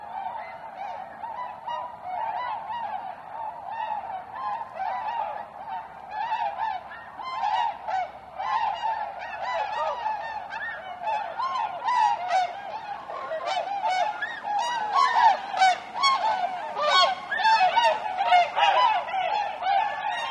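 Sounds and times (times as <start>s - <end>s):
flock of Tundra swans bugling honks: 0.0s - 20.2s.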